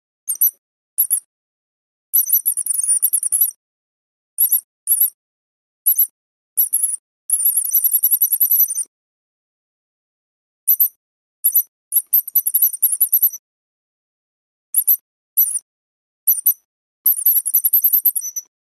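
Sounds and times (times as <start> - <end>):
mouse squeak lure whistle: 0.3 - 1.3, 2.2 - 3.6, 4.4 - 5.2, 5.9 - 8.9, 10.7 - 13.4, 14.8 - 15.7, 16.3 - 18.5.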